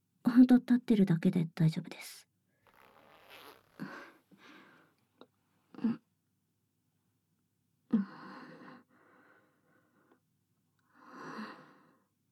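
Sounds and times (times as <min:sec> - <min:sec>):
speech: 0:00.4 - 0:02.3, 0:05.8 - 0:06.0
clothing zipper being opened: 0:02.6 - 0:04.6.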